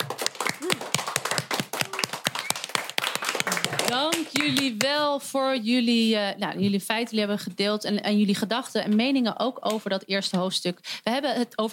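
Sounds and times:
room full of people applauding: 0.0 - 4.8
speech: 3.9 - 11.7.

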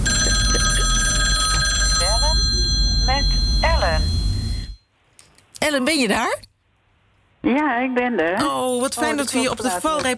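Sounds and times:
telephone ringing on an outgoing call: 0.0 - 4.8
speech: 5.8 - 6.5, 7.4 - 10.1.

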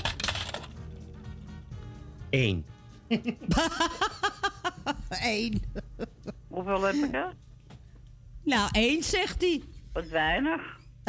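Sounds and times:
many coins spilling and bouncing onto a hard surface: 0.0 - 0.9
speech: 2.3 - 4.2, 4.8 - 7.4, 8.4 - 11.0
laughter: 3.1 - 7.0.

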